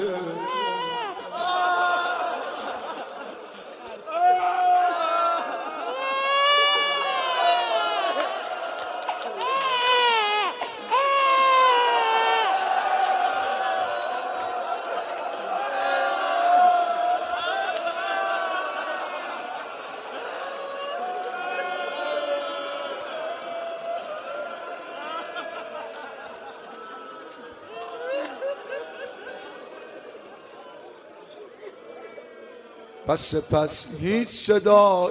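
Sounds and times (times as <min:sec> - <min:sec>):
laughter: 0:00.0 - 0:21.9, 0:22.6 - 0:32.7
six-month-old baby crying: 0:00.3 - 0:01.4, 0:05.8 - 0:08.6, 0:09.3 - 0:12.6
speech: 0:33.1 - 0:35.0.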